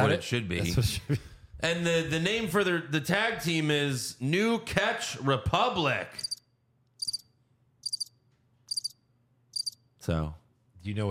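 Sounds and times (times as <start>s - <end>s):
speech: 0.1s - 6.3s, 10.1s - 11.0s
crickets chirping: 6.2s - 6.4s, 7.0s - 9.0s, 9.6s - 9.8s.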